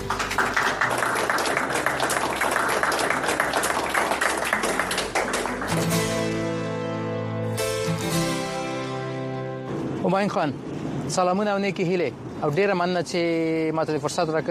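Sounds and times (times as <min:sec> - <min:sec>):
crowd applauding: 0:00.0 - 0:06.4
sustained music with a bright melodic line: 0:05.5 - 0:09.9
speech: 0:10.1 - 0:14.4.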